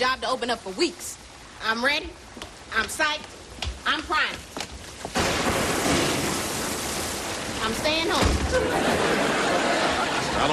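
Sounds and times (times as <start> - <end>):
speech: 0.0 - 5.4, 7.6 - 9.5, 10.4 - 10.5
torrential rain in a storm: 0.0 - 10.5
thunder in a storm: 5.1 - 9.2
laughter: 8.4 - 10.5.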